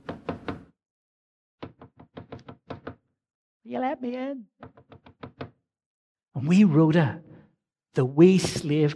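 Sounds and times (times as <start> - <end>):
knocking on a door: 0.0 - 0.8, 1.6 - 3.1, 4.6 - 5.6
speech: 3.7 - 4.7, 6.4 - 7.3, 8.0 - 8.9.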